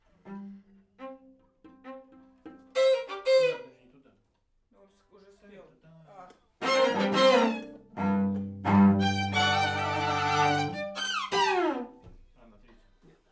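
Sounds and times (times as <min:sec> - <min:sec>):
main string section: 0:00.1 - 0:03.8, 0:06.6 - 0:12.2.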